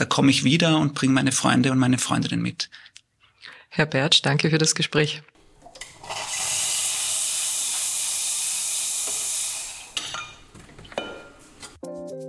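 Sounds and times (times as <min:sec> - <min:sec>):
speech: 0:00.0 - 0:02.9, 0:03.7 - 0:05.4
coffee machine hissing steam in a campus coffee lab: 0:05.9 - 0:10.4
cups and dishes clinking: 0:10.0 - 0:11.5.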